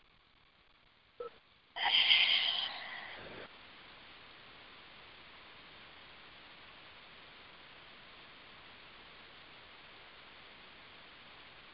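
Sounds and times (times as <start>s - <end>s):
faint sniff through the nose: 1.8s - 3.5s.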